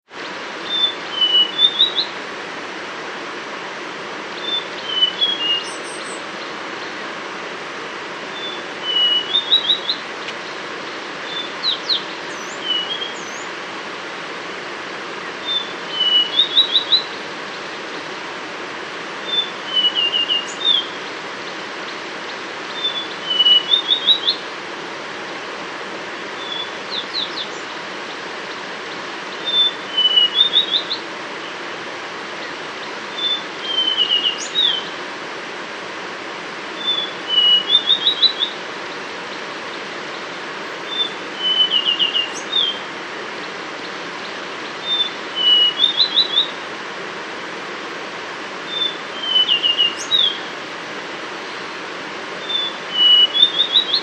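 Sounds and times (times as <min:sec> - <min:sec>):
brown scrub robin singing: 0:00.6 - 0:02.2, 0:04.3 - 0:07.1, 0:08.2 - 0:13.6, 0:15.2 - 0:18.0, 0:19.2 - 0:24.5, 0:26.3 - 0:31.6, 0:32.4 - 0:35.0, 0:36.7 - 0:46.7, 0:48.7 - 0:50.6, 0:52.4 - 0:54.0.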